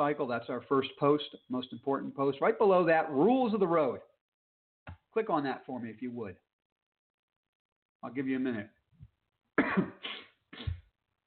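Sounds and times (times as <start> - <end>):
speech: 0.0 - 4.1, 4.8 - 6.4, 8.0 - 8.8
coughing and throat clearing: 9.6 - 10.9.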